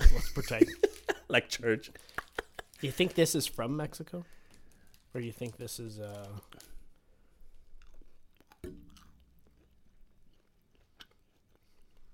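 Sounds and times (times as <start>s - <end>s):
laughter: 0.0s - 1.3s, 2.0s - 2.9s
speech: 0.4s - 2.2s, 2.8s - 4.4s, 5.1s - 6.5s
person chewing gummy candies: 1.9s - 3.5s, 4.3s - 12.1s.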